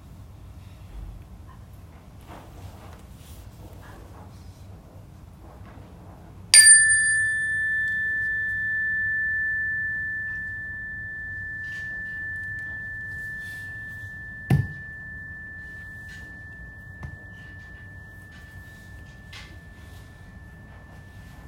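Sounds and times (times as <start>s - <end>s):
bell struck for a listening exercise: 6.6s - 21.4s.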